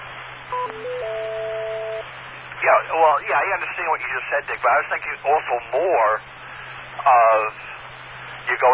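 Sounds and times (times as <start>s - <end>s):
radio static between transmissions: 0.0s - 8.7s
electronic beeps: 0.5s - 2.0s
sustained electronic tone: 0.5s - 2.2s
speech: 2.9s - 6.4s, 7.0s - 7.8s, 8.5s - 8.7s.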